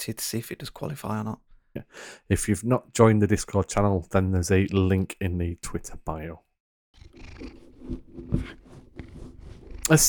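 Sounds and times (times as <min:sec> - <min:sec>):
speech: 0:00.0 - 0:06.5, 0:09.9 - 0:10.0
domestic cat purring: 0:07.0 - 0:10.0.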